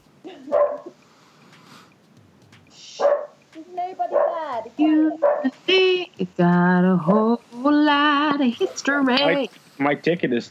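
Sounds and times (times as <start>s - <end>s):
dog giving a short mid-pitched bark: 0.5s - 1.0s, 3.0s - 3.4s, 4.1s - 4.5s, 5.2s - 5.6s
speech: 3.9s - 7.4s, 8.4s - 10.4s.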